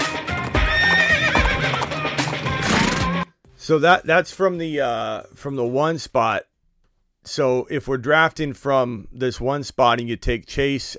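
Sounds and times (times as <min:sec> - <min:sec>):
horse hooves clip-clopping: 0:00.0 - 0:03.0
horse neighing: 0:00.5 - 0:03.2
speech: 0:03.7 - 0:06.5, 0:07.2 - 0:10.9.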